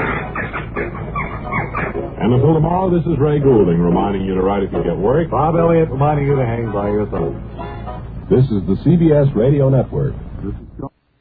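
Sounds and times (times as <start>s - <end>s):
bird call of rapid clucking chicken-like squawks: 0.0s - 2.3s
speech: 2.2s - 7.6s, 8.3s - 10.6s.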